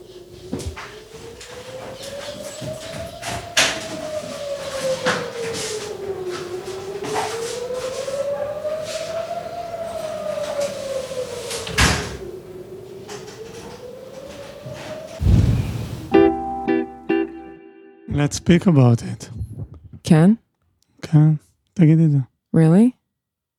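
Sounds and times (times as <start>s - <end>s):
air raid siren wailing: 0.0s - 19.5s
sharp bangs: 15.2s - 16.5s
speech: 18.2s - 19.4s, 20.1s - 20.4s, 21.1s - 23.0s.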